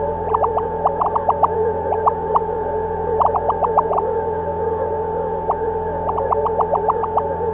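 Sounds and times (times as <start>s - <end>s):
alien blipper: 0.0s - 4.2s, 5.4s - 7.5s
ambience: 0.0s - 7.5s.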